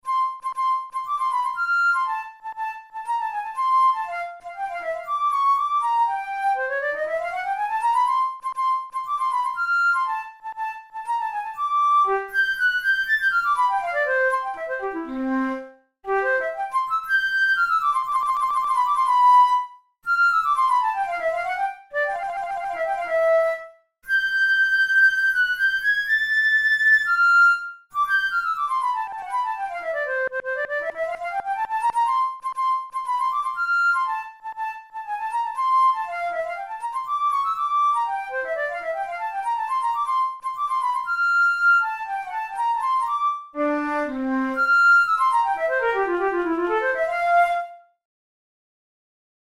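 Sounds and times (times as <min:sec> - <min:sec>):
Boehm flute playing studies: 0:00.0 - 0:48.0.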